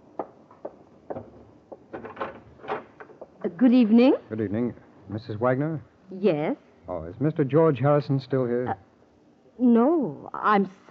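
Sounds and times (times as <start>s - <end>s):
front door rattling as it swings open: 1.1s - 3.3s
speech: 3.5s - 8.8s, 9.6s - 10.8s.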